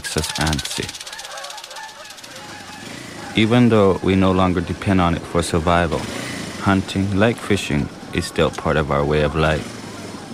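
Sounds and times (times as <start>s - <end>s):
flock of wild geese honking in flight over Pervernatuk in spring: 0.0s - 4.6s, 7.7s - 10.3s
speech: 0.1s - 1.1s, 3.4s - 9.8s.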